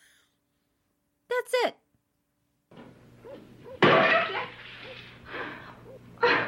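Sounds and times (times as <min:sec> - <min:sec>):
old phonograph record smashing: 0:02.7 - 0:04.9.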